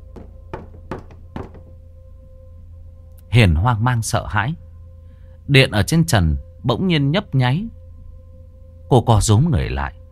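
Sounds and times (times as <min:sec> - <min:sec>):
low steady hum: 0:00.0 - 0:10.0
rattling knocks on a wall: 0:00.1 - 0:01.7
speech: 0:03.3 - 0:04.6, 0:05.5 - 0:07.8, 0:08.9 - 0:10.0.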